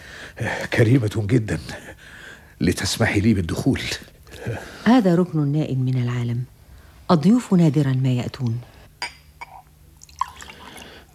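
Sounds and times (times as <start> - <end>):
speech: 0.4 - 6.5, 7.1 - 8.7
tea being poured into a cup: 10.0 - 11.1.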